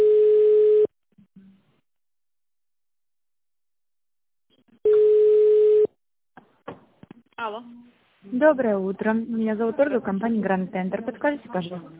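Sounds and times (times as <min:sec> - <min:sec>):
telephone ringback tone during call forwarding: 0:00.0 - 0:00.9, 0:04.9 - 0:05.9
speech: 0:07.4 - 0:11.9.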